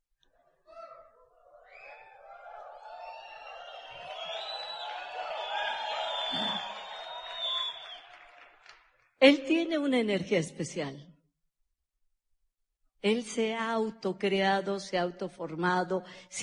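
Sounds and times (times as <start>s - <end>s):
audience shouting and cheering: 0.6s - 8.5s
whoops: 0.7s - 8.4s
scattered applause: 1.6s - 9.1s
speech: 9.2s - 11.1s, 13.0s - 16.4s.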